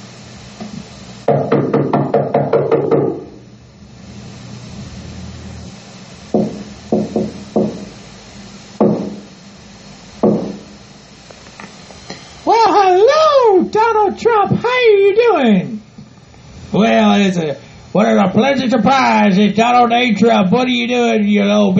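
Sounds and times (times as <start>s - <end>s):
low hum: 0.0s - 21.7s
speech: 1.3s - 1.7s, 15.3s - 15.7s, 16.8s - 21.7s
sharp wooden knocks on a door: 1.3s - 3.4s, 6.3s - 7.9s, 8.8s - 9.2s, 10.2s - 10.6s.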